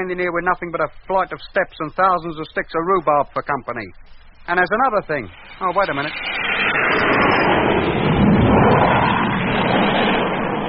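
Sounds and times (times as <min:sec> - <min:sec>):
speech: 0:00.0 - 0:08.0
aircraft passing overhead: 0:05.3 - 0:10.6.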